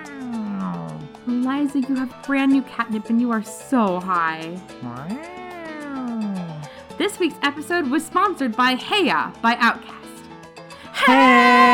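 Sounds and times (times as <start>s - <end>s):
cat meowing: 0.0s - 1.1s, 5.0s - 6.7s
speech: 1.5s - 5.4s, 7.0s - 10.0s, 11.1s - 11.6s.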